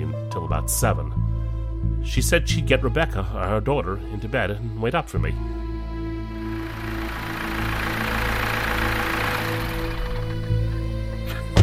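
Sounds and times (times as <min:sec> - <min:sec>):
speech: 0:00.4 - 0:01.3, 0:02.0 - 0:05.6
car engine idling in a home driveway: 0:06.2 - 0:11.3.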